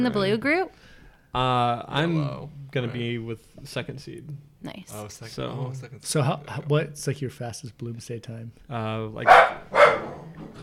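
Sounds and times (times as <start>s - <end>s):
speech: 0.0s - 10.6s
dog barking excitedly: 9.2s - 10.3s.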